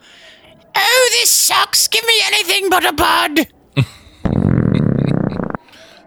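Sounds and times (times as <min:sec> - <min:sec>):
speech: 0:01.1 - 0:04.0
loud deep rumbling belch: 0:04.2 - 0:05.6.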